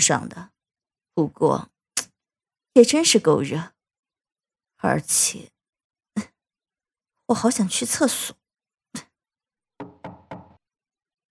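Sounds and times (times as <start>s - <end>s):
speech: 0.0s - 0.6s, 1.2s - 1.7s, 2.8s - 3.8s, 4.8s - 5.5s, 7.3s - 9.0s
knocking on a door: 9.8s - 10.6s.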